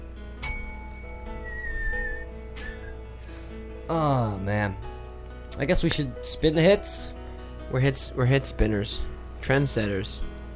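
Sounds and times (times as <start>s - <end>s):
low hum: 0.0s - 10.5s
bell struck once giving a bright clear metallic ding: 0.4s - 3.2s
speech: 3.9s - 4.8s, 5.6s - 10.3s.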